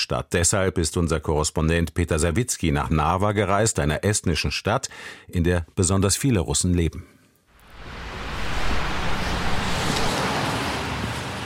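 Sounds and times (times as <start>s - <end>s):
speech: 0.1s - 7.2s
light morning street traffic: 7.8s - 11.4s.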